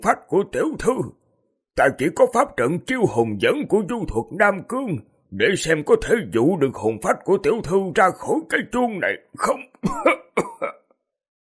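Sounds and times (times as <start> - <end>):
speech: 0.0 - 1.2, 1.8 - 10.8
old man's violent coughing fit: 9.8 - 10.9.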